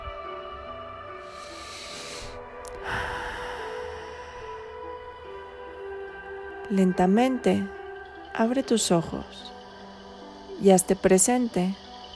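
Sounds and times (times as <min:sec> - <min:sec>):
steady gentle musical drone: 0:00.0 - 0:12.1
deep breath drawn in and released: 0:01.2 - 0:04.8
speech: 0:06.7 - 0:07.8, 0:08.4 - 0:09.6, 0:10.6 - 0:11.8.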